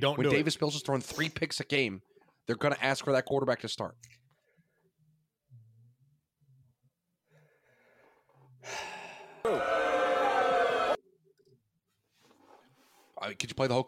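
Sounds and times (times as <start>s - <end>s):
speech: 0.0s - 4.2s, 8.6s - 9.9s, 13.2s - 13.8s
person gasping and wheezing after a cough: 8.6s - 9.5s.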